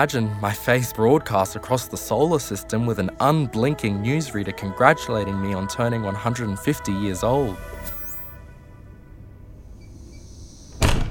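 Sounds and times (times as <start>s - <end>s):
speech: 0.0s - 7.8s
back door opening: 9.7s - 11.0s.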